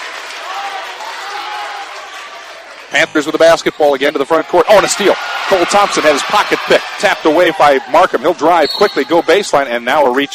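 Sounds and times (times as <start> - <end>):
crowd applause at a basketball game: 0.0 - 3.5, 4.3 - 8.6
speech: 2.9 - 10.3.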